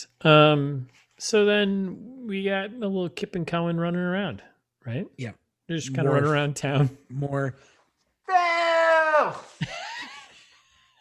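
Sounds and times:
speech: 0.0 - 9.8
person yelling: 8.3 - 9.6
wavering cry: 8.3 - 9.7.

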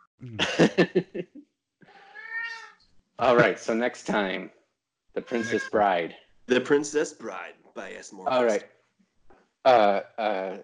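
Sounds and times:
laughter: 0.2 - 1.4, 3.2 - 4.4, 5.2 - 8.6, 9.7 - 10.6
speech: 0.2 - 1.4, 3.2 - 4.6, 5.2 - 8.8, 9.6 - 10.6
cat meowing: 2.0 - 2.7, 5.2 - 6.1.

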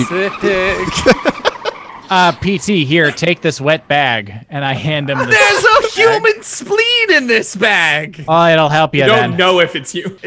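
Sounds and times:
speech: 0.0 - 1.5, 2.1 - 10.2
voice imitating car engine revving bursts: 0.0 - 3.9
voice imitating a car peeling out with tires squealing: 0.0 - 6.4
laughter: 0.0 - 6.9, 9.1 - 10.2.

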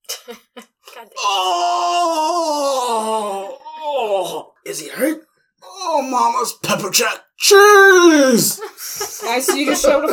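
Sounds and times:
loud drawn-out human groan from a restroom: 1.2 - 4.4, 7.4 - 8.6
speech: 6.4 - 10.1
laughter: 8.3 - 10.1.

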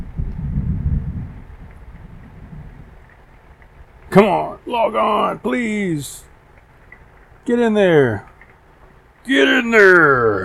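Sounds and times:
low rolling rumble of thunder: 0.0 - 4.0
steady hiss: 1.4 - 10.4
speech: 4.1 - 6.3, 7.4 - 8.3, 9.2 - 10.4.

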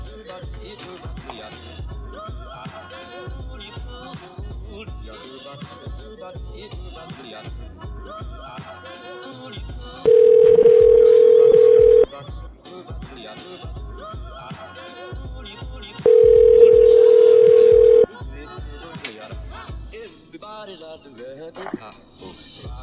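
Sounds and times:
telephone tone while calling someone back: 10.1 - 12.1, 16.1 - 18.1.

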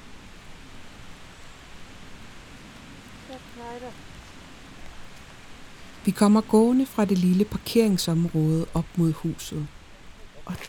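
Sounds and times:
steady rain: 0.0 - 10.6
speech: 3.4 - 4.2, 6.0 - 9.8, 10.5 - 10.6.

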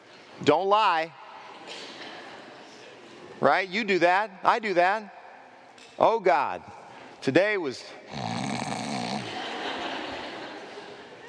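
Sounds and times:
speech: 0.4 - 1.9, 3.4 - 5.2, 6.0 - 8.3
person doing a loud imitation of snoring: 8.1 - 9.4
laughter: 9.1 - 11.2.

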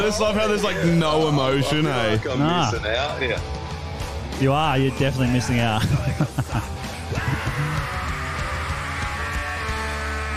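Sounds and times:
speech: 0.0 - 3.6, 4.4 - 6.7
loud dense band music with distorted instruments: 0.0 - 10.3
laughter: 5.6 - 9.2
harsh sustained scream from a played band recording: 7.1 - 10.3.

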